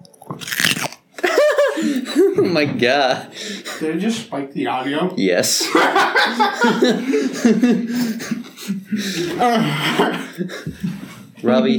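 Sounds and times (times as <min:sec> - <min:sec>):
crunch of someone biting into crisp food: 0:00.0 - 0:01.2
laughter: 0:01.2 - 0:03.9, 0:05.5 - 0:10.9
speech: 0:02.4 - 0:11.7.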